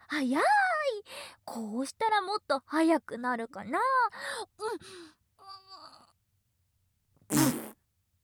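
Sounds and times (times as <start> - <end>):
speech: 0.2 - 0.6, 1.5 - 4.1
short loud fart: 7.3 - 7.8.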